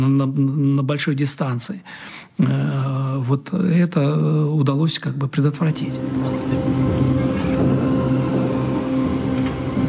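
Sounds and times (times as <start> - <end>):
speech: 0.0 - 7.4
German aircraft engines droning at high altitude: 5.8 - 9.8.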